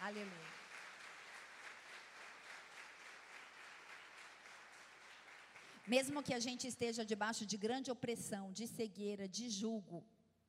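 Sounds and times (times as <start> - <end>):
large crowd applauding: 0.0 - 6.2
speech: 0.1 - 0.6, 5.8 - 10.2.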